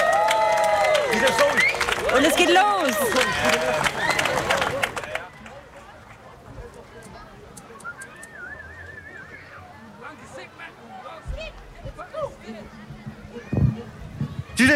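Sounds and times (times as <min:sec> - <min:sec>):
audience applause and cheering: 0:00.0 - 0:05.3
crowd chatter: 0:00.0 - 0:14.7
speech: 0:02.1 - 0:04.1
audience whistles: 0:07.7 - 0:09.6.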